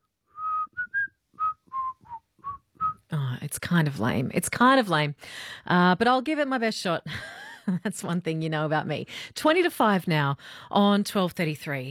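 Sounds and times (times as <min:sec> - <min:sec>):
person whistling a tune: 0:00.3 - 0:03.0
speech: 0:03.1 - 0:11.8.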